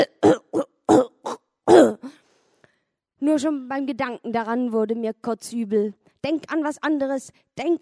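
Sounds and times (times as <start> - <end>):
older man coughing harshly on a train: 0.0 - 2.2
speech: 3.4 - 7.7.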